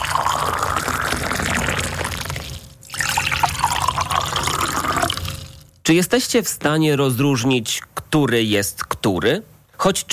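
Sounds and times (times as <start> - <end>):
boiling water poured into a mug: 0.0 - 5.7
speech: 5.9 - 10.1.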